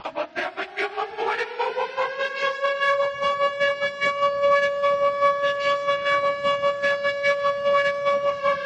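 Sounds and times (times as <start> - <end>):
thunk siren: 0.0 - 8.6.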